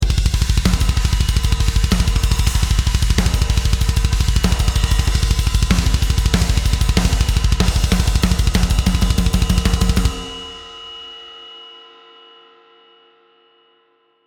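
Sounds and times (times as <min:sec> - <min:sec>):
processed technical metal drum groove: 0:00.0 - 0:10.9.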